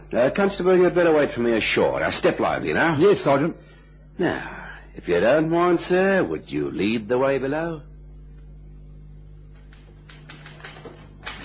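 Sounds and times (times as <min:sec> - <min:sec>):
low steady hum: 0:00.0 - 0:11.4
speech: 0:00.1 - 0:07.9
typewriter keys clacking: 0:10.1 - 0:11.4.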